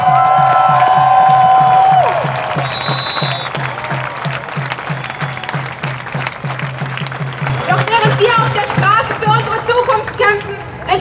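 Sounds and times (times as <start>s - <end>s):
steady rhythmic drumbeat: 0.0s - 10.8s
large crowd applauding and cheering at an outdoor rally: 0.0s - 10.9s
sustained whistle or horn-like tone: 2.6s - 3.7s, 4.9s - 5.6s.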